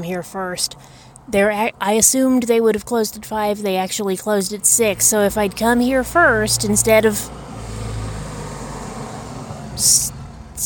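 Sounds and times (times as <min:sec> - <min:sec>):
speech: 0:00.0 - 0:07.5, 0:09.8 - 0:10.6
pickup truck driving past: 0:04.9 - 0:10.6.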